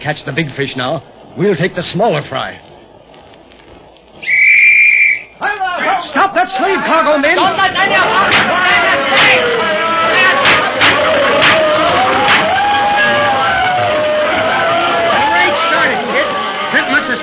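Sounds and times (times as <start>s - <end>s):
speech: 0.0s - 2.7s, 6.3s - 9.5s
crowd of spectators roaring and chattering at a fight: 1.0s - 4.3s, 5.2s - 17.2s
spectators' shouts and whoops: 8.5s - 17.2s.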